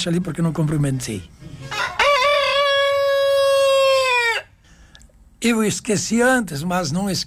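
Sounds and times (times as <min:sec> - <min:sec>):
speech: 0:00.0 - 0:01.5, 0:05.4 - 0:07.2
rooster crowing: 0:01.6 - 0:04.6.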